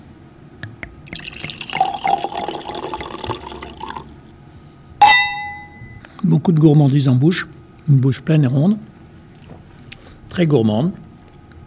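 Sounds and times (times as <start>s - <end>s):
single bright clink of glass: 1.1s - 4.1s, 5.0s - 6.0s
2019 Château de Fleury Gamay wine glugging and splashing into a glass: 1.1s - 4.3s
speech: 6.3s - 8.9s, 10.4s - 11.0s.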